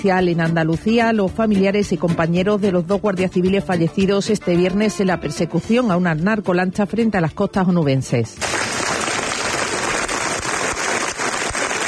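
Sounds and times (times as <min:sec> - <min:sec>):
speech: 0:00.0 - 0:08.8
crowd of citizens applauding arrival of coffins at a church in Huelva: 0:08.4 - 0:11.8.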